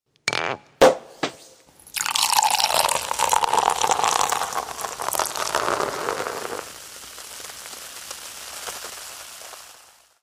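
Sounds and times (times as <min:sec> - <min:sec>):
champagne cork popping: 0:00.3 - 0:10.2.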